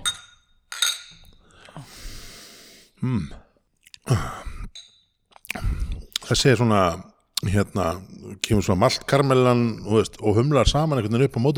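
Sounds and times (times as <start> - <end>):
beer glasses clinking in a toast during a beer tasting: 0.0 - 1.4, 4.7 - 5.2
speech: 3.0 - 3.4, 4.1 - 4.4, 6.3 - 11.5.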